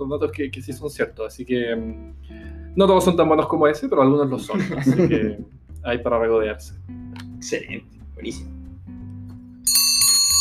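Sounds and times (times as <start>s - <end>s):
speech: 0.0s - 8.6s
laughter: 4.4s - 5.5s
bright high-pitched bell ringing: 9.7s - 10.3s.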